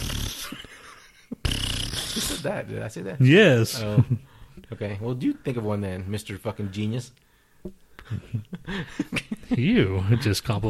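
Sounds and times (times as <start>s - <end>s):
breathy airy fart: 0.0s - 0.6s, 1.4s - 2.5s
speech: 2.4s - 10.6s.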